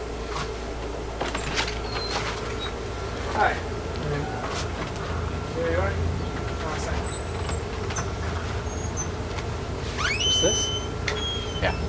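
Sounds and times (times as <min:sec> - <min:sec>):
steady low hum: 0:00.0 - 0:11.8
screen door creaking open: 0:01.2 - 0:02.9, 0:06.9 - 0:11.8.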